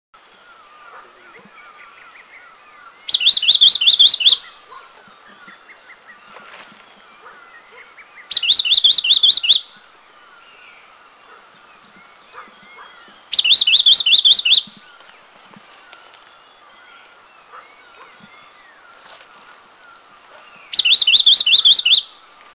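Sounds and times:
Rufous-throated Wren Babbler in Eaglenest India: 0.4s - 6.3s, 6.9s - 15.0s, 15.9s - 22.3s.

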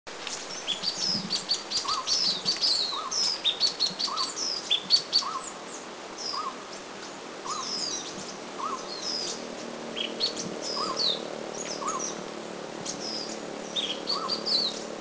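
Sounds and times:
Chestnut-tailed Minla calling in Doi Inthanon Thailand: 0.5s - 14.9s.

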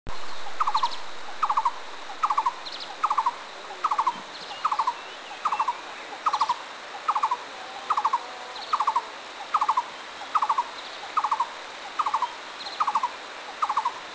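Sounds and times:
blue-throated barbet calling in Thailand: 0.1s - 14.1s.

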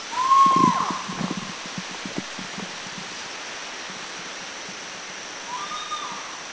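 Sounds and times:
spot-bellied eagle-owl call in Laos: 0.1s - 1.6s, 5.5s - 6.5s.

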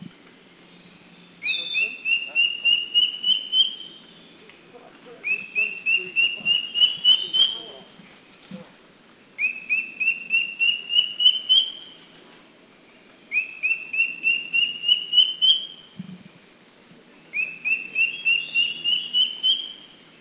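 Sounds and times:
Philippine drongo-cuckoo singing rising whistled phrases at Makiling, Philippines: 0.6s - 4.4s, 5.2s - 8.6s, 9.4s - 12.0s, 13.3s - 15.9s, 17.3s - 19.9s.

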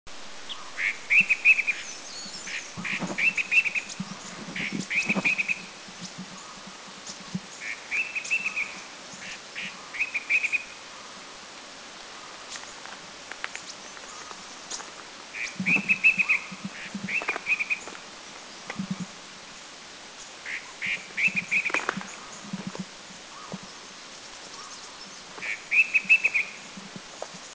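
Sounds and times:
Flavescent Bulbul at Doi Inthanon in Thailand: 0.5s - 6.6s, 7.6s - 10.8s, 15.4s - 17.9s, 20.5s - 22.3s, 24.6s - 26.8s.

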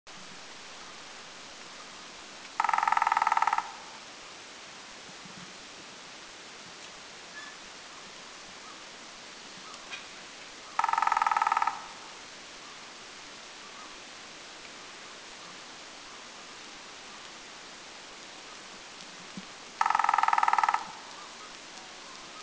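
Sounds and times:
Crimson-breasted Woodpecker drumming at Doi Lang in Thailand: 2.6s - 4.0s, 10.8s - 12.1s, 19.8s - 21.6s.

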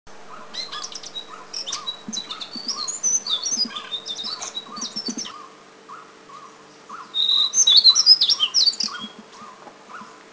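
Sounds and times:
White-browed Shortwing in Thailand: 0.2s - 10.2s.

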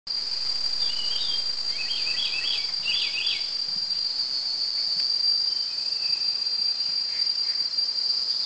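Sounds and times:
Puff-backed bulbul calling: 0.8s - 3.6s.

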